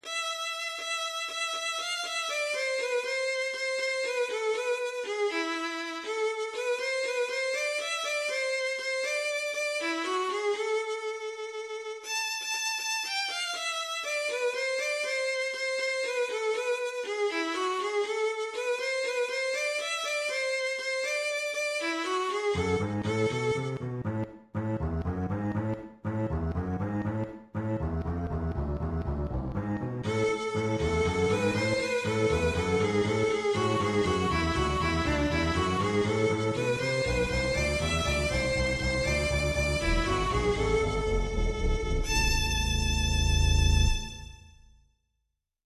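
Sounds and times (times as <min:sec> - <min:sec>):
violin: 0:00.0 - 0:44.6
cello: 0:21.9 - 0:44.4.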